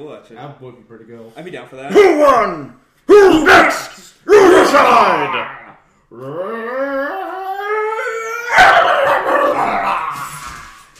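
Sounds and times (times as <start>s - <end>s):
speech: 0.0s - 4.1s, 4.7s - 6.6s
scared dog howling, yowling and barking: 6.9s - 10.9s.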